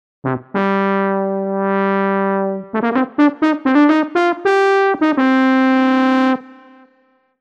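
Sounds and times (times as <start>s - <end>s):
brass horn: 0.2s - 7.1s.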